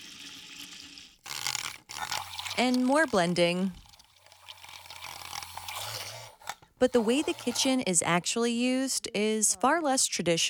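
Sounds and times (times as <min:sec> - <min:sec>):
water pouring in a home kitchen: 0:00.0 - 0:07.8
speech: 0:02.6 - 0:03.8, 0:06.8 - 0:10.4.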